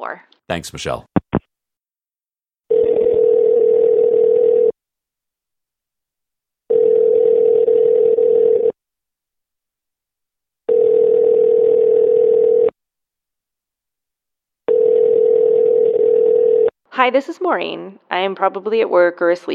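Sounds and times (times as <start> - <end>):
speech: 0.0 - 1.1, 17.0 - 19.5
loud steady telephone tone: 2.7 - 4.8, 6.7 - 8.8, 10.7 - 12.8, 14.7 - 16.7.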